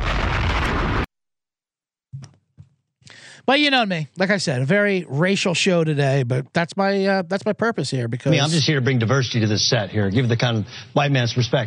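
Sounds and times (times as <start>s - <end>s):
bomb explosion sound effect: 0.0s - 1.1s
speech: 3.4s - 11.6s.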